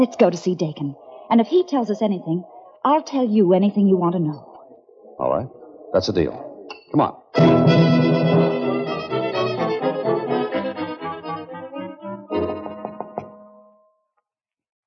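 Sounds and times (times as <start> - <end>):
speech: 0.0 - 4.5, 5.2 - 7.9
music playing: 7.4 - 13.8.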